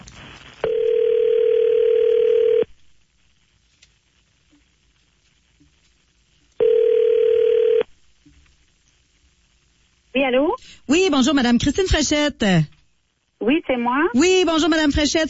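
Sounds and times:
telephone dial tone while placing call: 0.6 - 2.7, 6.6 - 7.9
speech: 10.3 - 12.8, 13.4 - 15.2.

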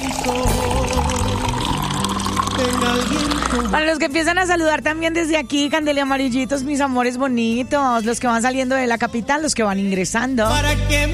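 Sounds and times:
drink poured over ice cubes: 0.0 - 3.8
speech: 0.2 - 0.7, 2.6 - 11.1.

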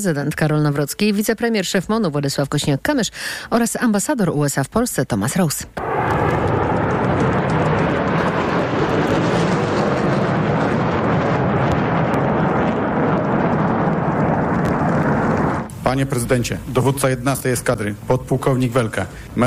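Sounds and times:
speech: 0.0 - 6.4, 15.9 - 19.4
F-35 fighter jet engines roaring at a military air base: 5.8 - 15.7.

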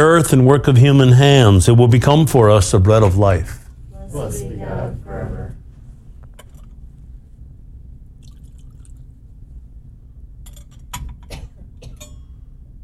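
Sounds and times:
speech: 0.0 - 5.6
water poured into wine in a chalice: 8.2 - 9.1.

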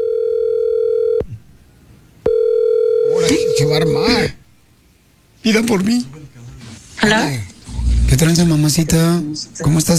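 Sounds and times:
telephone ringback tone as a call is dialed: 0.0 - 1.2, 2.3 - 4.1
speech: 5.5 - 6.4, 7.0 - 7.5, 8.2 - 9.9.

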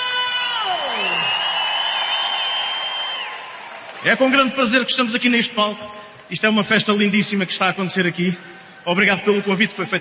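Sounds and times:
large concert audience shouting and cheering: 0.0 - 4.4
speech: 4.0 - 9.9.

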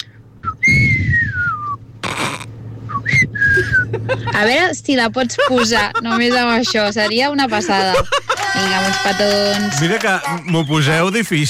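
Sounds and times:
low hum: 0.0 - 11.4
person whistling a song's melody: 0.4 - 1.8, 2.9 - 3.9
laughter: 3.5 - 10.7
speech: 4.4 - 11.4.

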